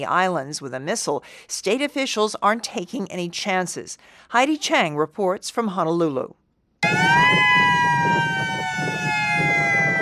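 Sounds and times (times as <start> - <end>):
speech: 0.0 - 6.4
attack warning siren wailing: 6.8 - 10.0.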